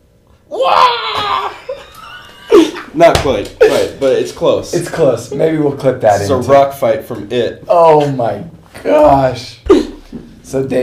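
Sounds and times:
person vocally imitating a classic movie scream: 0.5s - 1.8s
laughter: 1.4s - 4.1s
speech: 3.0s - 9.7s, 10.5s - 10.8s.

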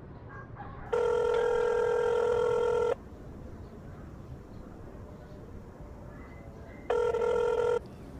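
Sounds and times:
ringback tone of an outgoing telephone call: 1.0s - 3.0s, 6.9s - 7.8s.

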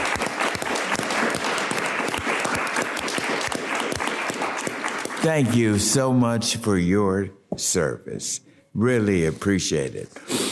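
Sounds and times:
audience clapping: 0.0s - 6.0s
speech: 5.2s - 10.4s.

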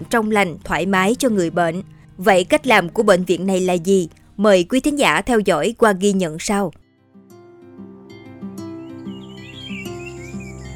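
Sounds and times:
soft music: 0.0s - 10.7s
speech: 0.1s - 6.8s
birds chirping in a hospital garden: 8.6s - 10.7s.

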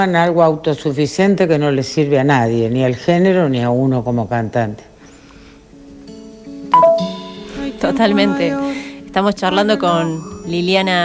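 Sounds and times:
speech: 0.0s - 4.9s, 7.8s - 11.0s
WhatsApp message notification ping on a phone: 6.8s - 7.4s.

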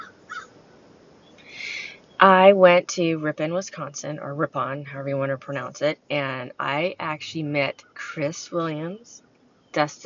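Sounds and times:
crow cawing outdoors: 0.0s - 0.5s
faint noise: 0.0s - 10.0s
speech: 2.2s - 10.0s.

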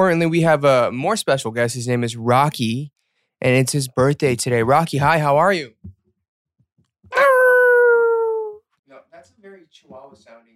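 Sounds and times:
speech: 0.0s - 6.0s, 9.7s - 10.5s
small dog howling and whimpering: 7.1s - 8.6s.

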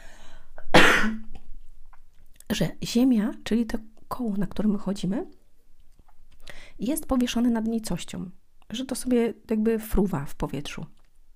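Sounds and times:
person coughing: 0.7s - 1.2s
speech: 2.5s - 5.4s, 6.8s - 11.0s.

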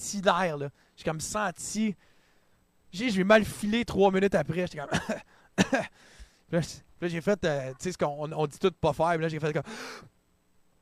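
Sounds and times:
speech: 0.1s - 2.1s, 2.9s - 10.1s
deep breath drawn in sharply: 5.3s - 6.5s, 9.6s - 10.1s.

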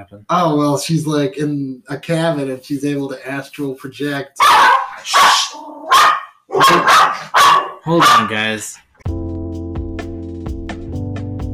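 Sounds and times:
speech: 0.0s - 9.2s
dog barking: 4.4s - 8.4s
dog whining: 4.6s - 7.8s.

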